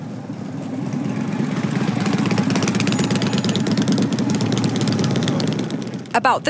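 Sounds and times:
motorcycle engines rumbling at a motorcycle rally in Fayetteville, Northwest Arkansas: 0.0 - 6.4
speech: 6.2 - 6.4.

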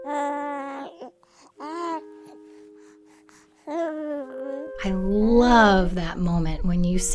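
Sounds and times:
newborn baby crying: 0.0 - 2.4, 3.6 - 4.8
speech: 4.8 - 7.1.

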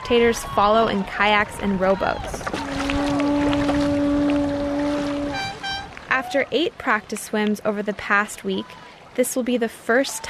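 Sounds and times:
boat motor droning on open water: 0.0 - 7.2
water noise: 0.0 - 10.2
wind: 0.0 - 10.2
speech: 0.1 - 2.6, 6.3 - 10.2.

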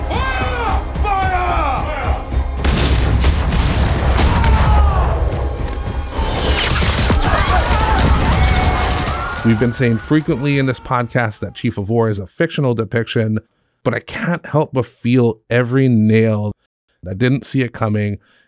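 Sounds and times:
frantic shouting and cries from a crowd: 0.0 - 2.6, 3.9 - 11.6
heavy cannons firing on a village: 2.6 - 9.6
speech: 9.5 - 18.4.

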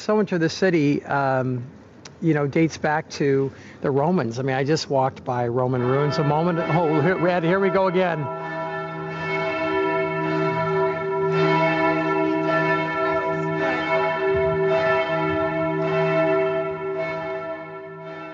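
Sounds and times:
speech: 0.0 - 8.5
church bells ringing in a city square: 5.6 - 18.3.

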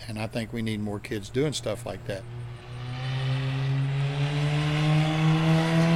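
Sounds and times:
speech: 0.1 - 2.4
race car engine droning on a track: 1.4 - 5.9.

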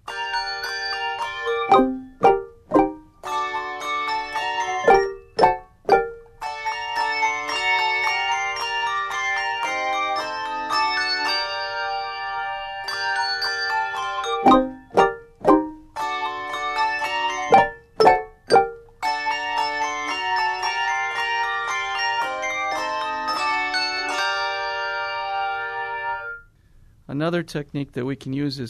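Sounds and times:
handbell ensemble ringing sustained shimmering chords: 0.0 - 26.4
sharp martellato strikes on handbells: 1.1 - 3.5, 4.1 - 8.8, 14.0 - 16.2, 16.9 - 20.5
speech: 1.7 - 1.9, 27.4 - 28.6.

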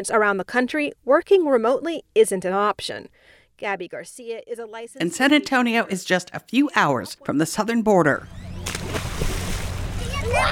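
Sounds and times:
speech: 0.0 - 8.5
kids splashing in murky water along the banks of the Rio Grande: 8.6 - 10.5.

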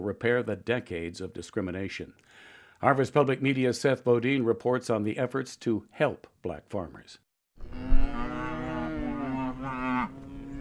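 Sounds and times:
speech: 0.1 - 7.9
cow mooing in a long bellow: 7.6 - 10.6.

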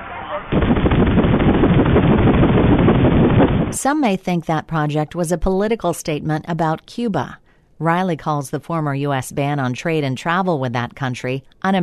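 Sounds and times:
water noise at sea: 0.0 - 3.8
wind buffeting on a party boat at sea: 0.5 - 3.8
speech: 3.7 - 11.8.

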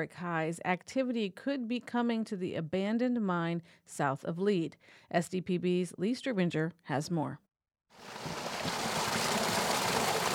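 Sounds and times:
speech: 0.0 - 8.4
water flowing from a tube into a creek: 8.0 - 10.3.

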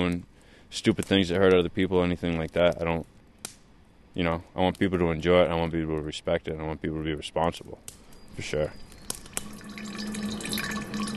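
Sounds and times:
speech: 0.0 - 3.1, 4.2 - 8.8
clear 150-proof liquor trickling into an unlabeled jar: 9.2 - 11.1.

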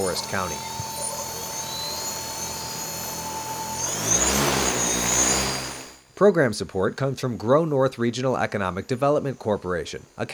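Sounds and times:
speech: 0.0 - 0.8, 6.2 - 10.3
tethered drone motor whine in Forest County Wisconsin: 0.0 - 6.0.

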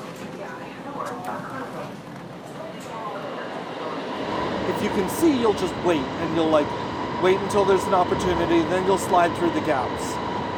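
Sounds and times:
murmur of passengers' voices: 0.0 - 10.2
subway train arriving at the platform: 0.0 - 10.5
speech: 4.8 - 10.3.

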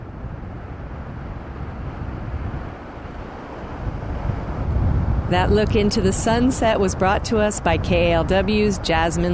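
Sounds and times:
ocean surf breaking on a beach: 0.0 - 9.3
wind buffeting: 0.0 - 9.3
speech: 5.3 - 9.3.

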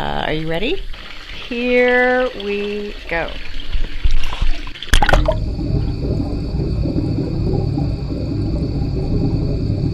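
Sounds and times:
speech: 0.0 - 0.9, 1.5 - 3.6
water sloshing and gurgling heard underwater: 0.0 - 9.9
dense low rumble heard underwater: 3.6 - 9.9
steady high tonal hums heard underwater: 5.0 - 9.9.

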